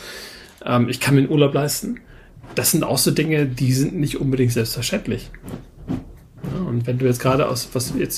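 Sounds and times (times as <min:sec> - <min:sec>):
speech: 0:00.6 - 0:05.7, 0:06.8 - 0:08.1
dog scratching at a carpet: 0:02.3 - 0:08.1.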